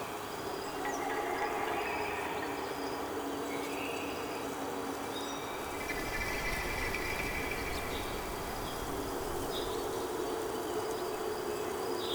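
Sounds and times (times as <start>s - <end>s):
mountain ambience: 0.1s - 12.0s.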